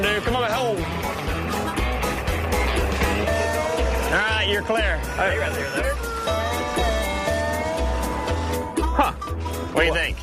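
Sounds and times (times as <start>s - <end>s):
heavy diesel tractor engine rumbling under load pulling a stuck truck: 0.0s - 10.2s
rough mechanical clatter of tractor engine under load: 0.5s - 4.8s
speech: 4.6s - 6.9s, 9.8s - 10.2s.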